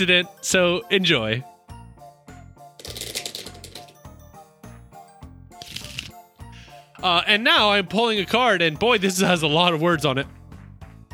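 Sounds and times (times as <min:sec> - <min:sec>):
speech: 0:00.0 - 0:01.5, 0:07.0 - 0:10.4
deck of cards shuffling: 0:02.8 - 0:04.1, 0:05.6 - 0:06.2.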